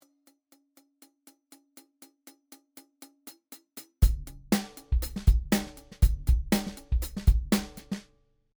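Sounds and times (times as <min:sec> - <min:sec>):
closed tight tip hi-hat: 0:03.6 - 0:08.1.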